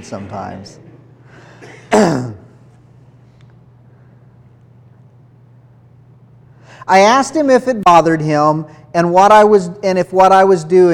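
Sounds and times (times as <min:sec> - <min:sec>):
speech: 0:00.0 - 0:00.9, 0:01.6 - 0:02.4, 0:06.9 - 0:10.9
cough with throat clearing: 0:01.4 - 0:02.6.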